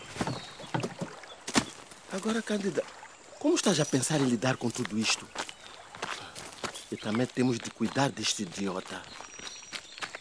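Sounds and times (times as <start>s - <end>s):
small wooden rowboat knocking and scraping against a dock: 0.0s - 1.7s
wooden creaks of a rowboat at a dock: 0.0s - 1.7s
speech: 2.1s - 5.4s, 6.9s - 9.2s.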